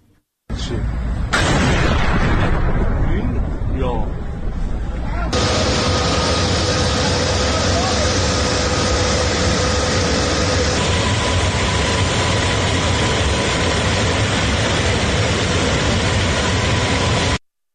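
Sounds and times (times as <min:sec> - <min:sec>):
continuous rumbling roar of an explosion: 0:00.5 - 0:17.4
explosion boom in a city at night: 0:01.3 - 0:06.8.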